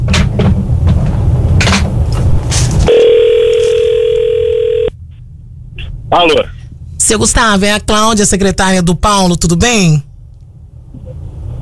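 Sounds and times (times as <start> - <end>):
steady low hum: 0.6 - 11.5
telephone ringing tone on an outgoing call: 2.9 - 5.0
speech: 6.1 - 10.1.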